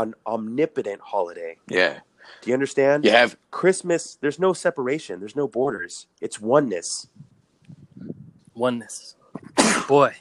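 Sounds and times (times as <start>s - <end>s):
speech: 0.0s - 7.3s, 8.0s - 10.1s
loud sharp breathy sneeze: 9.5s - 10.0s.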